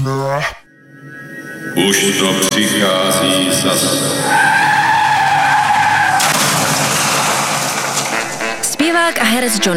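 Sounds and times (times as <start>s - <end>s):
speech: 0.0s - 0.6s, 1.8s - 4.8s, 8.9s - 9.7s
Porsche car tires squealing while skidding: 3.5s - 8.8s
Porsche car crashing: 3.7s - 9.5s.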